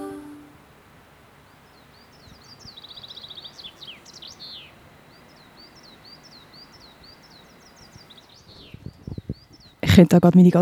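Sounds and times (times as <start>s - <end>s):
birds chirping and twittering outdoors: 0.3s - 10.6s
speech: 10.0s - 10.6s.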